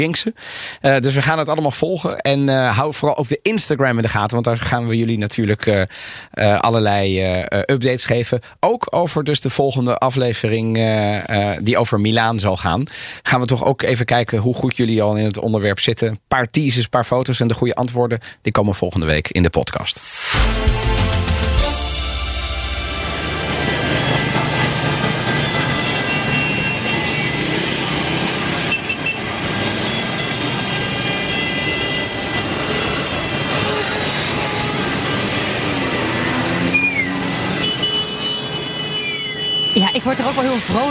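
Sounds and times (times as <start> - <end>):
speech: 0.0 - 20.9, 39.8 - 40.8
car horns honking: 20.4 - 40.8
dense loud street traffic in southern Italy: 21.1 - 40.8.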